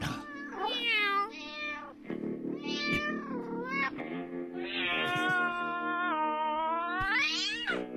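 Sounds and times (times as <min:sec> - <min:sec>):
black cat meowing and caterwauling: 0:00.2 - 0:01.9, 0:02.6 - 0:03.9, 0:04.6 - 0:07.8.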